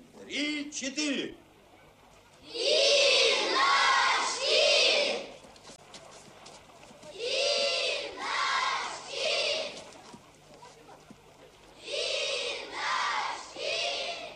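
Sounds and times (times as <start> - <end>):
speech: 0.3 - 1.4, 2.5 - 3.0
quieter murmur: 1.2 - 14.3
noisy crowd at a camp chanting in unison: 2.5 - 5.3, 7.1 - 9.8, 11.8 - 14.3.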